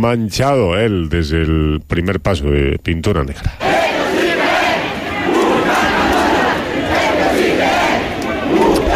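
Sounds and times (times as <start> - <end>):
speech: 0.0 - 4.0
huge festival crowd of thousands chanting and cheering in the center of Baza: 3.6 - 8.9.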